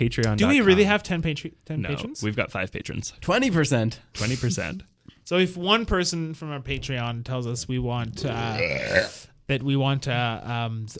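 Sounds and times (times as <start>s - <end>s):
speech: 0.0s - 10.9s
loud drawn-out belch with a deep croaky tone: 8.2s - 9.2s.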